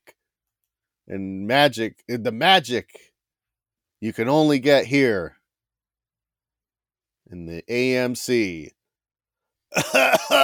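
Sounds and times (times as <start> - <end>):
speech: 1.1 - 3.1, 4.0 - 5.4, 7.3 - 8.8, 9.7 - 10.4
person coughing harshly: 9.8 - 10.4.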